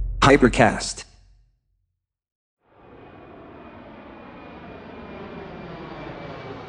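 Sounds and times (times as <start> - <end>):
speech: 0.3 - 1.1
airplane cabin engine drone with faint high whine: 2.7 - 6.6.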